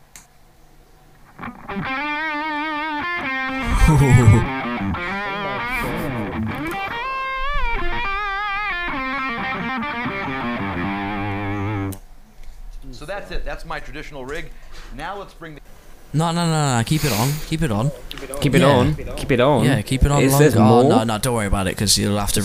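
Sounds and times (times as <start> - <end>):
distorted electric guitar played through a distortion pedal: 1.3 - 12.0
speech: 1.8 - 2.0, 3.9 - 6.6, 13.0 - 22.4.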